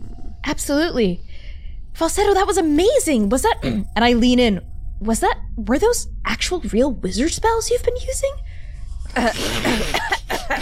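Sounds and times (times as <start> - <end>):
speech: 0.5 - 1.3, 2.0 - 8.5, 9.2 - 10.6
person coughing loudly in a rough burst: 9.2 - 10.6.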